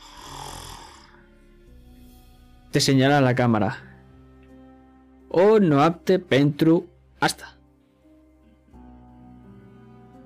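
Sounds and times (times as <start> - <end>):
person imitating snoring by voice: 0.0 - 1.2
speech: 2.8 - 3.9, 5.3 - 7.6.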